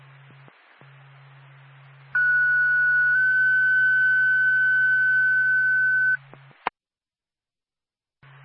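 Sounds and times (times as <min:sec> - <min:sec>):
low steady hum: 0:00.0 - 0:06.7.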